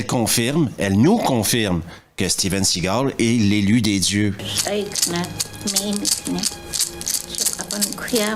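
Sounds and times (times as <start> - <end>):
speech: 0.0 - 8.3
rattle being shaken: 4.4 - 8.3.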